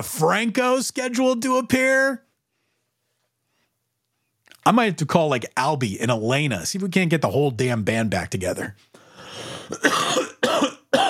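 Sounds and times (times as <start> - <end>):
speech: 0.0 - 2.3, 4.7 - 8.9
harsh chesty coughs: 9.5 - 11.0.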